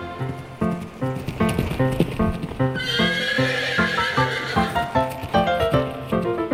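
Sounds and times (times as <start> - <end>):
horse hooves clip-clopping: 0.1 - 6.5
horse neighing: 2.7 - 4.9.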